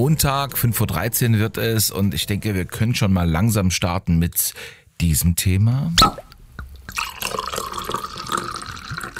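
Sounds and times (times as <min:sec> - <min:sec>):
speech: 0:00.0 - 0:06.3, 0:06.9 - 0:07.4
wine being poured into a glass: 0:06.0 - 0:09.1.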